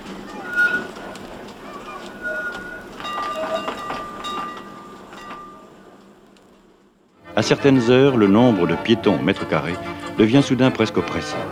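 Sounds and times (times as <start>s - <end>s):
metallic clanks: 0.0s - 6.6s
busy street background: 0.0s - 11.5s
tram rolling away with a steady rumble: 0.0s - 11.5s
tram wheels squealing against the rails: 0.0s - 11.5s
speech: 7.4s - 11.5s.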